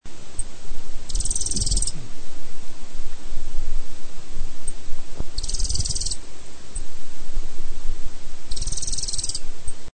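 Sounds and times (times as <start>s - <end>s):
low rumbling background: 0.0s - 9.9s
thorn-tailed rayadito high trills: 1.1s - 2.0s, 5.4s - 6.2s, 8.5s - 9.5s.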